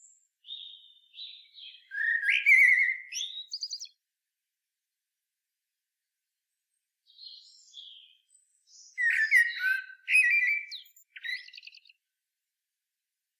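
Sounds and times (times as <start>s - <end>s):
common blackbird Turdus merula singing: 0.0s - 4.0s, 7.1s - 12.0s.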